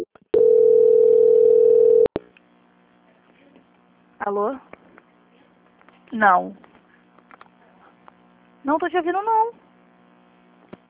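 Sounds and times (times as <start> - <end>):
steady mid-pitched telephone tone while a call is transferred: 0.0 - 2.1
speech: 4.2 - 4.8, 6.1 - 6.7, 8.6 - 9.6.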